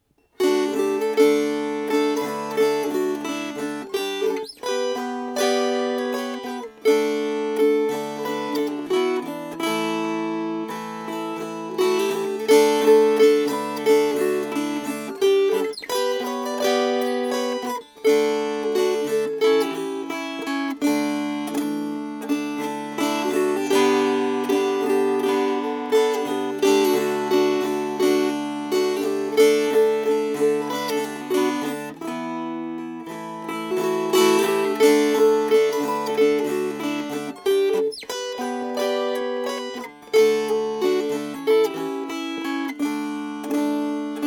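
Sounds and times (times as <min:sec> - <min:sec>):
strummed strings: 0:00.0 - 0:44.2.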